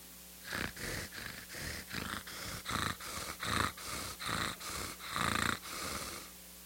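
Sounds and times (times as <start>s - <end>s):
voice imitating a cat purring: 0.4s - 6.3s.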